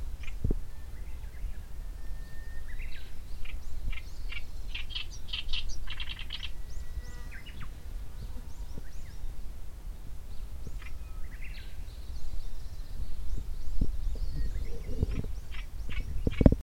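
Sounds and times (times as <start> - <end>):
Black-browed reed warbler song: 0.0 - 9.5, 10.3 - 16.6
low rumbling background near Daibosatsu Pass, Japan: 0.0 - 16.4
thin sustained whistle of black-browed reed warbler: 0.6 - 3.3, 6.0 - 7.7, 10.9 - 12.9.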